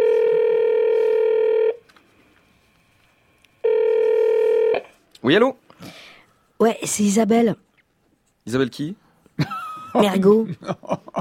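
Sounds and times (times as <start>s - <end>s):
telephone call ringing tone: 0.0s - 1.8s, 3.6s - 4.9s
speech: 5.3s - 6.0s, 6.6s - 7.7s, 8.5s - 11.0s.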